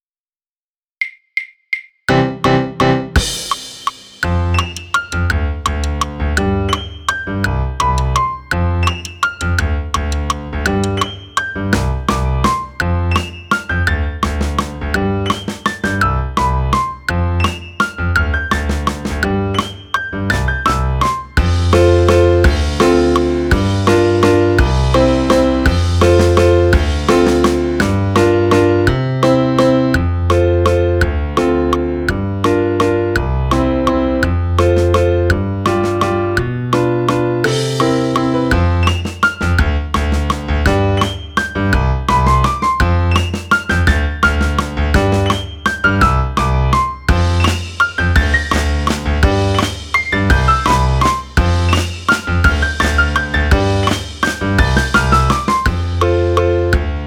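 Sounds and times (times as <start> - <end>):
drum kit: 1.0 - 57.0
Viennese waltz on piano: 2.1 - 3.4, 4.3 - 57.0.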